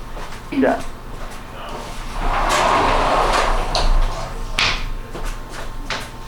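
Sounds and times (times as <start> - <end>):
speech: 0.5 - 1.0
faint room noise: 0.8 - 5.8
sliding door scraping: 1.6 - 5.0.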